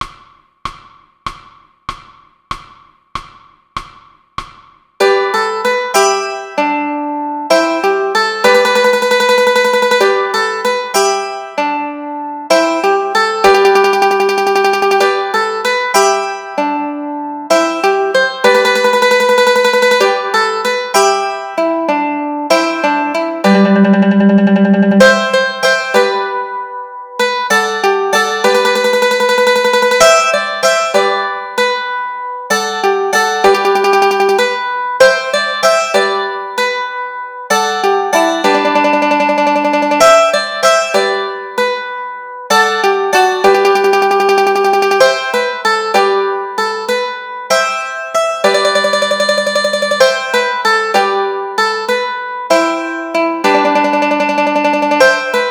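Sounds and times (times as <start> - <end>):
mandolin melody and chords: 5.0 - 55.4.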